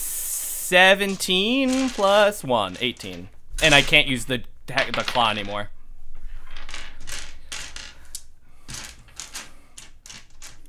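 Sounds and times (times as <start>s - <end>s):
speech: 0.7s - 5.8s
dice rattling across a hard tabletop: 0.8s - 3.8s, 4.8s - 5.6s, 6.4s - 10.6s.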